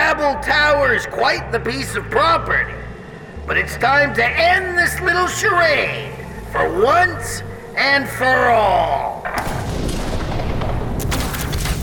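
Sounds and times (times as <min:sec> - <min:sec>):
speech: 0:00.3 - 0:02.9, 0:03.5 - 0:09.6
missile explosions in a video game: 0:09.3 - 0:11.8.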